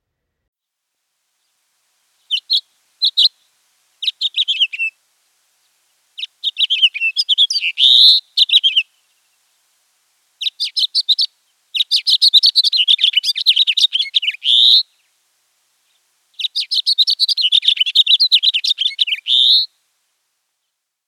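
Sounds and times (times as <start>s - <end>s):
house finch singing warbling phrases: 2.2s - 3.4s, 4.0s - 5.0s, 6.2s - 9.2s, 10.4s - 14.8s, 16.4s - 19.7s.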